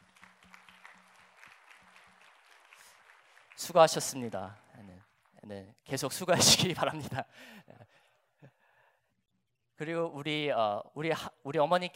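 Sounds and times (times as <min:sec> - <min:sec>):
crowd applauding: 0:00.0 - 0:06.1
speech: 0:03.6 - 0:07.8, 0:09.8 - 0:11.9.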